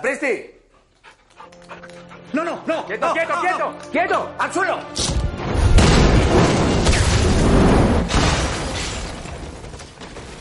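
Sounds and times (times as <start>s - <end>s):
speech: 0.0s - 0.6s, 2.3s - 5.1s
sharper crashing bursts: 5.2s - 10.4s
kitchen explosion roar with debris: 5.4s - 10.4s.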